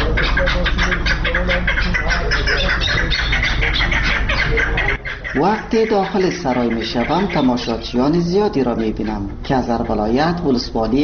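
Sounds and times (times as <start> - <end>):
birds calling and chirping near a poultry market: 0.0 - 11.0
busy noisy near a poultry market: 0.0 - 11.0
squawks and clucks: 0.0 - 11.0
speech: 5.4 - 11.0.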